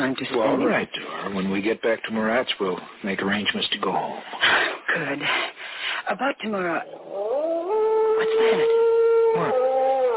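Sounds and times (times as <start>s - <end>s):
speech: 0.0s - 5.5s, 6.1s - 7.2s, 8.2s - 9.7s
dog howling outside at night: 6.8s - 10.1s.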